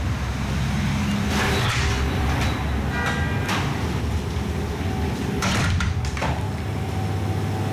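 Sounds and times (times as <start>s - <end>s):
street traffic noise: 0.0s - 7.7s
cookie bakery sliding door opening with clunks and rattles: 1.1s - 6.7s.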